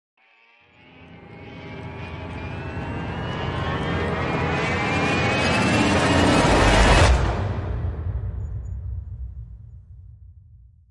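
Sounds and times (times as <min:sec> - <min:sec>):
swelling synth pad: 0:00.7 - 0:07.9.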